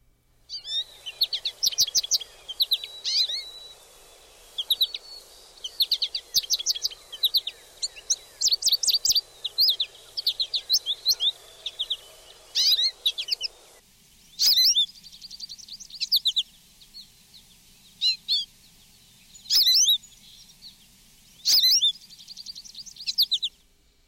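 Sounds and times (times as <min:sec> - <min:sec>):
soft hiss: 0:00.0 - 0:24.0
American goldfinch calls: 0:00.5 - 0:13.8, 0:14.4 - 0:16.4, 0:19.3 - 0:20.5, 0:21.4 - 0:23.5.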